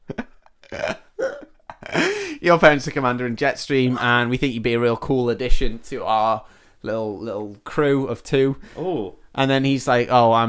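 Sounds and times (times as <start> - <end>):
person burping: 0.2 - 2.2
speech: 1.9 - 10.4.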